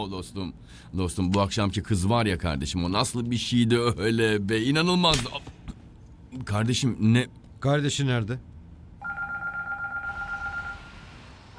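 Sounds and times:
speech: 0:00.0 - 0:05.6, 0:06.3 - 0:08.5
faint hum: 0:00.0 - 0:11.5
telephone ringing with electronic trill: 0:09.0 - 0:11.0.

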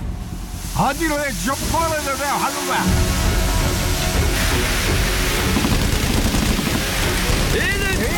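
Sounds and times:
speech: 0:00.8 - 0:04.8, 0:07.6 - 0:08.1
gunfire from pirates attacking a ship: 0:05.5 - 0:07.6.

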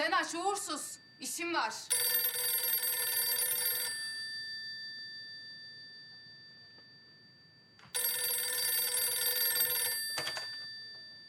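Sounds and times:
speech: 0:00.3 - 0:02.5
old-style telephone bell ringing: 0:01.9 - 0:11.2.

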